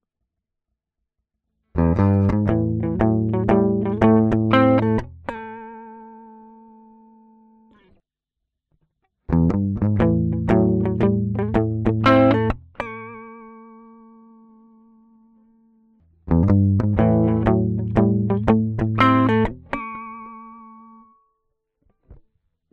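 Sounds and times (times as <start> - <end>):
guitar through transistor tube: 1.8 - 8.0, 9.3 - 15.1, 16.3 - 21.3.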